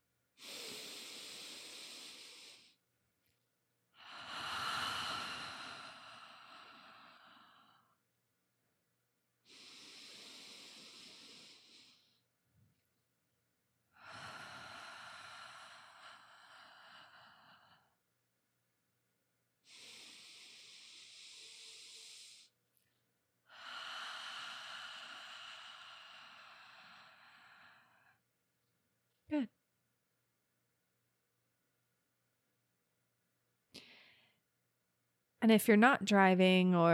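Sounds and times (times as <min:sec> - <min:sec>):
slow deep breaths in a guided breathing exercise: 0:00.4 - 0:02.8, 0:04.0 - 0:08.0, 0:09.4 - 0:12.3, 0:13.9 - 0:18.0, 0:19.6 - 0:22.6, 0:23.4 - 0:28.3, 0:33.7 - 0:34.6
speech: 0:35.4 - 0:36.9.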